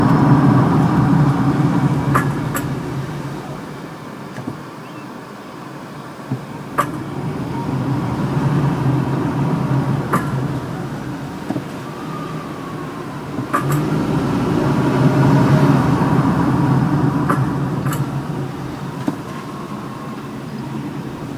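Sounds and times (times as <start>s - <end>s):
Ford Escape Hybrid clicking when stopping and starting: 0.0s - 4.8s, 6.1s - 21.3s.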